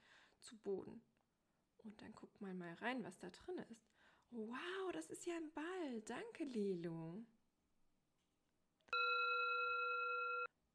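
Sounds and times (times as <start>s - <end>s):
speech: 0.4s - 1.1s, 1.8s - 7.4s
electronic doorbell buzzing: 9.0s - 10.5s.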